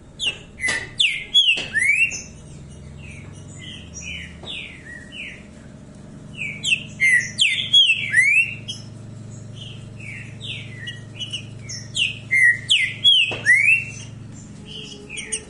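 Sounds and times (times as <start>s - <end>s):
low hum: 0.0s - 15.4s
green-winged saltator whistled bursts: 0.6s - 2.3s, 6.4s - 8.9s, 10.0s - 14.1s.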